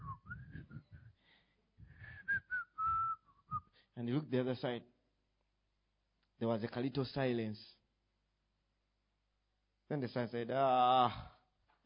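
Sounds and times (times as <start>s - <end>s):
person whistling a casual tune: 0.0s - 1.1s, 1.9s - 3.7s
speech: 4.0s - 5.0s, 6.4s - 7.8s, 9.9s - 11.3s.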